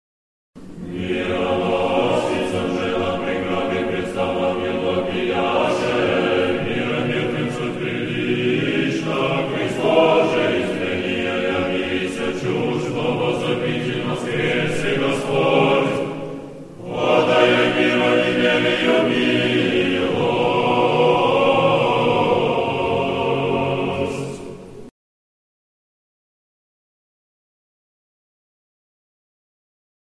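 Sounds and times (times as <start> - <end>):
male choir singing a troparion: 0.8 - 24.8.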